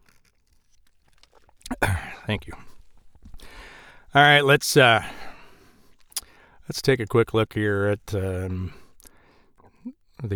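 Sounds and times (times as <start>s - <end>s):
person sipping ice water: 0.0s - 4.2s, 5.0s - 6.5s
speech: 2.3s - 2.7s, 4.1s - 5.2s, 6.7s - 8.8s, 9.8s - 10.3s.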